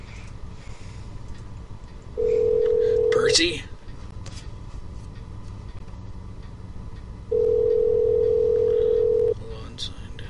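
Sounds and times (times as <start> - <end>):
electronic phone ringing tone: 2.2 - 3.5, 7.3 - 9.4
speech: 3.4 - 3.7.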